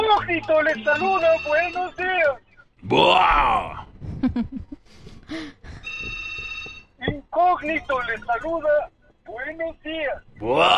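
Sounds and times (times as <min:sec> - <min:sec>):
speech: 0:00.1 - 0:06.2, 0:07.0 - 0:10.7
brief vocal sounds: 0:02.8 - 0:03.8, 0:10.4 - 0:10.7
high electronic telephone ring: 0:05.9 - 0:07.0.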